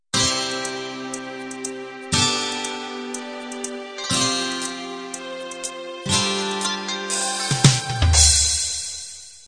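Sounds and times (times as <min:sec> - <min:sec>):
six-string guitar beat intro: 0:00.2 - 0:09.4.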